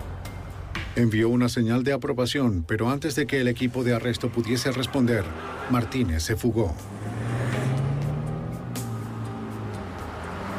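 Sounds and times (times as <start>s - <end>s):
heavy road traffic noise: 0.0s - 1.0s, 3.4s - 10.5s
speech: 1.0s - 7.0s
car engine revving and accelerating: 3.7s - 10.5s.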